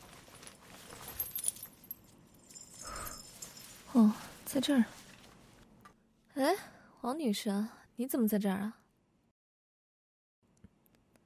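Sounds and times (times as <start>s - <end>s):
keys jingling while being rummaged through: 0.3s - 4.0s
speech: 3.9s - 5.0s, 6.4s - 8.8s.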